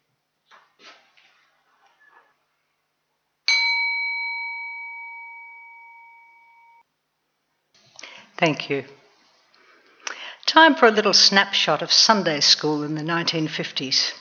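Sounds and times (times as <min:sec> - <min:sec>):
single bell struck to end a two-minute silence: 0:03.5 - 0:06.8
speech: 0:08.4 - 0:09.0, 0:10.5 - 0:14.1.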